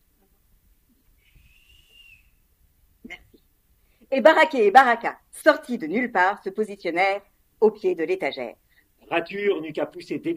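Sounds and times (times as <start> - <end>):
small rat whistling: 1.2 - 2.4
speech: 4.1 - 10.3.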